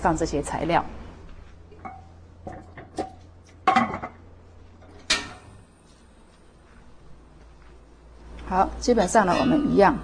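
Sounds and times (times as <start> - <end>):
speech: 0.0 - 1.0, 8.5 - 10.0
heavy pork bone set down into a metal cooking pot: 1.8 - 4.2
sharp ringing clang of metal cooking pot: 1.8 - 4.2, 5.0 - 5.5.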